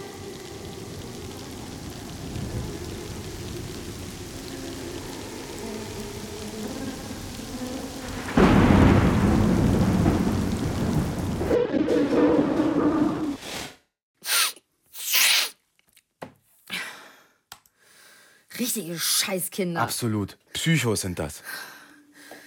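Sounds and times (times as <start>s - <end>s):
heavy rain: 0.0s - 13.4s
loud roll of thunder: 0.0s - 13.4s
speech: 18.8s - 21.7s.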